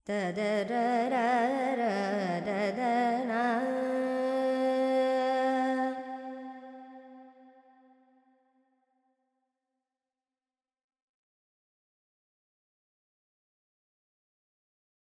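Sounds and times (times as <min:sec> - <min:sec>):
Carnatic female vocal alaps in Lydian mode: 0:00.0 - 0:07.1.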